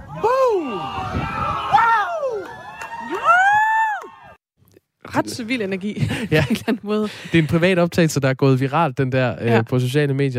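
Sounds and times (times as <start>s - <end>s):
beach crowd cheering: 0.0s - 4.4s
whoops and shouts: 0.0s - 4.4s
speech: 5.2s - 10.3s
laughter: 5.9s - 7.6s.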